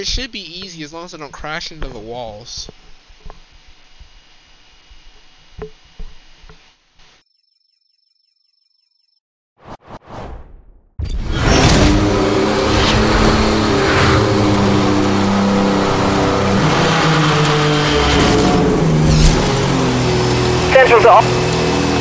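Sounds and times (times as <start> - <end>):
speech: 0.0 - 2.9, 21.1 - 21.4
quiet racing video game sounds: 0.0 - 3.5, 7.2 - 9.2
steady beep: 1.2 - 3.2, 7.2 - 9.2
police car engine revving in a racing video game: 11.2 - 21.9.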